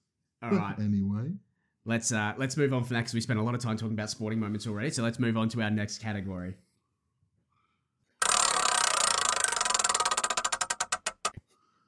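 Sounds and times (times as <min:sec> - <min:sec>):
speech: 0:00.4 - 0:06.7
spinning prize wheel ratcheting clicks: 0:08.2 - 0:11.4.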